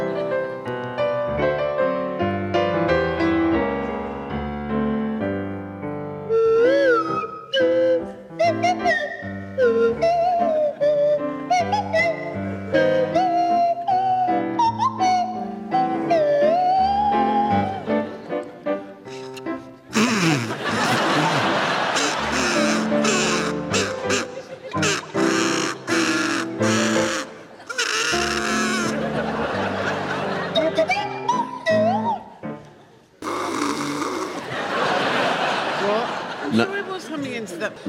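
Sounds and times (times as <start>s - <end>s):
steady musical accompaniment: 0.0s - 35.5s
buzzy kazoo playing a tune: 19.1s - 29.0s, 33.2s - 34.5s
laughter: 20.0s - 31.0s, 33.5s - 37.8s
sliding swanee whistle playing a tune: 22.0s - 29.0s.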